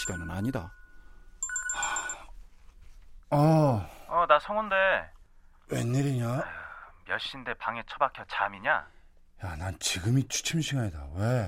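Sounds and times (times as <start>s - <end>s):
phone ringing with warbling electronic tones: 0.0s - 2.3s
speech: 0.1s - 0.8s, 3.3s - 11.4s.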